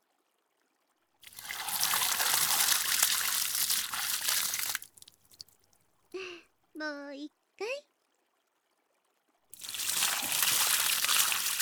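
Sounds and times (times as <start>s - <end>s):
water poured over a person's body to rinse them: 1.2s - 5.6s, 9.6s - 11.6s
speech: 6.8s - 7.8s.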